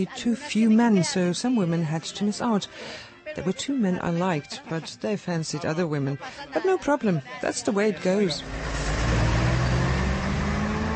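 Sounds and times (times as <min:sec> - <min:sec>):
speech: 0:00.0 - 0:08.9
bus engine drone driving away: 0:08.2 - 0:10.9.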